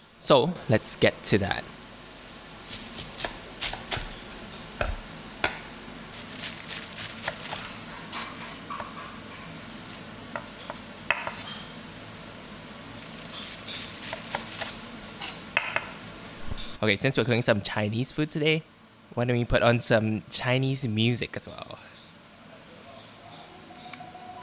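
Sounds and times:
speech: 0.2s - 1.8s, 16.8s - 22.0s
knife chopping flat-leaved Chinese chives: 2.7s - 4.2s, 6.2s - 8.3s, 13.4s - 14.8s.

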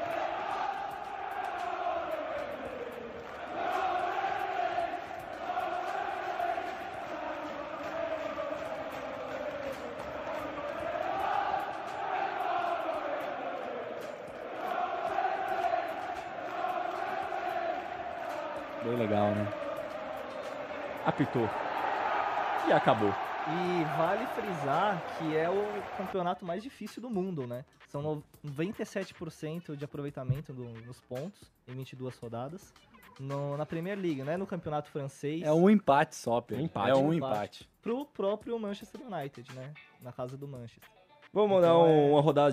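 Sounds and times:
huge stadium crowd roaring at the final whistle of a league match: 0.0s - 26.2s
speech: 18.9s - 19.6s, 21.0s - 21.6s, 22.6s - 42.5s.

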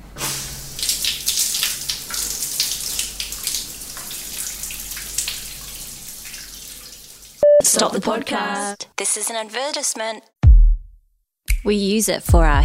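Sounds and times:
shower water running: 0.1s - 7.4s
speech: 7.7s - 10.3s, 11.6s - 12.6s.

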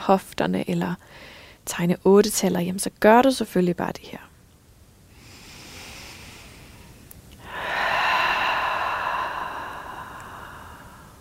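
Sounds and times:
speech: 0.1s - 4.3s
person exhaling deeply during a slow stretching exercise with hip circles: 5.2s - 11.1s.

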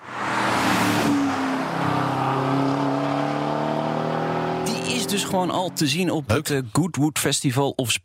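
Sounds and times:
V8 engine of prototype SUV revving: 0.0s - 6.3s
speech: 5.1s - 8.0s.

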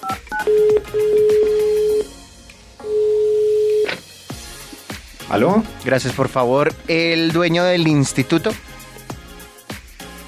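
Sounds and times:
touch-tone DTMF beeps of a telephone number being dialed: 0.0s - 2.1s, 2.8s - 4.0s
speech: 5.3s - 8.7s.

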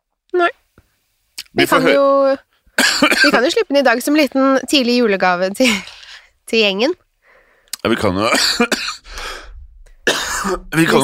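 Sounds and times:
speech: 1.6s - 5.9s, 6.5s - 7.0s, 7.8s - 8.9s, 10.5s - 11.0s
person in a harsh coughing fit: 2.8s - 3.4s, 8.3s - 9.4s, 10.0s - 10.8s.

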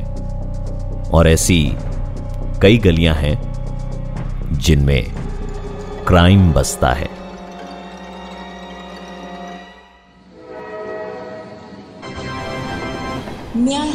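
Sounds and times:
speech: 1.2s - 1.9s, 2.6s - 3.5s, 4.6s - 5.2s, 6.1s - 7.2s
indistinct voices at a railway station: 4.5s - 9.4s
rumbling railway carriages: 4.8s - 9.7s
train horn at a railway station: 10.3s - 13.4s.

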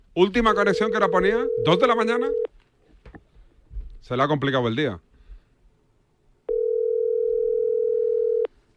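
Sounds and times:
faint noise: 0.0s - 8.7s
speech: 0.2s - 2.6s, 4.0s - 5.1s
ringback tone on an outgoing phone call: 0.6s - 2.5s, 6.5s - 8.5s.

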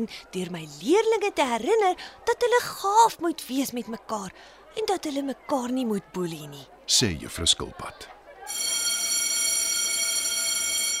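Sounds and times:
speech: 0.0s - 8.8s
electric school bell ringing: 8.5s - 10.9s.

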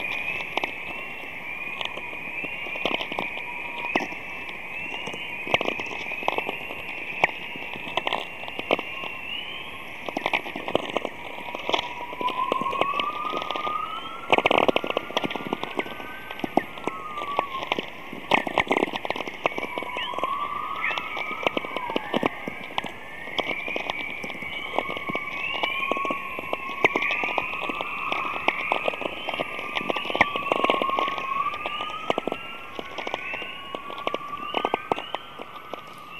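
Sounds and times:
crackling and popping static from recorded aurora: 0.0s - 36.1s
faint warbling whistle-like tones from recorded aurora: 0.0s - 36.1s.

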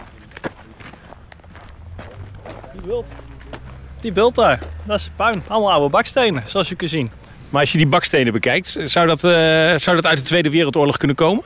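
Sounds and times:
soft crunching footsteps walking outdoors: 0.0s - 8.6s
speech: 2.8s - 3.3s, 4.0s - 11.4s.

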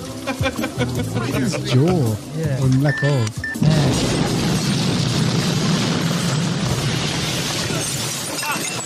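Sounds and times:
laughter: 0.1s - 2.2s
speech: 0.4s - 4.1s
cinematic film explosions: 3.6s - 8.3s
heavy rumbling and crashing: 3.8s - 8.8s
debris shattering: 3.9s - 8.8s.

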